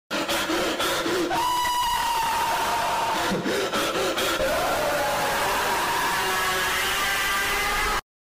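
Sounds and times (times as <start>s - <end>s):
heavy breathing: 0.1s - 1.4s, 3.0s - 4.8s
person screaming: 1.3s - 8.0s.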